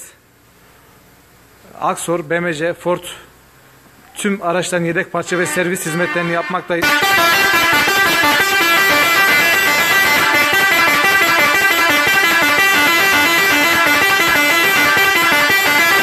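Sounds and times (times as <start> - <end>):
speech: 1.8 - 3.3, 4.2 - 7.4
musical air horn on a truck: 5.2 - 16.0.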